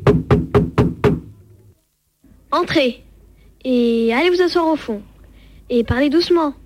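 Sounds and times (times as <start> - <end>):
knocking on a wooden classroom door: 0.0 - 1.3
speech: 2.5 - 5.1, 5.7 - 6.6.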